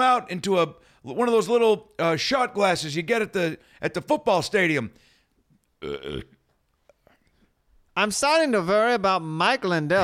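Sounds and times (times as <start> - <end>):
speech: 0.0 - 5.1, 5.8 - 6.4, 8.0 - 10.0
loud throaty burp with a rough buzzing tone: 5.8 - 6.4.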